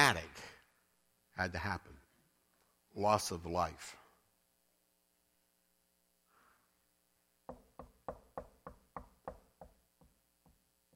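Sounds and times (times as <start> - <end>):
speech: 0.0 - 0.3, 1.4 - 2.0, 3.0 - 4.0
sharp knocks: 7.5 - 10.9.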